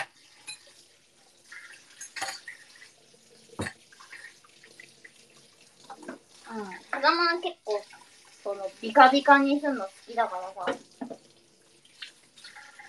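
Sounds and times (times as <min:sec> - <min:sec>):
dishes or utensils clanking: 0:00.0 - 0:00.8, 0:01.6 - 0:02.7, 0:03.6 - 0:03.8, 0:10.6 - 0:11.3
tap water running into a kitchen sink during cleaning: 0:00.0 - 0:12.8
speech: 0:07.1 - 0:10.8.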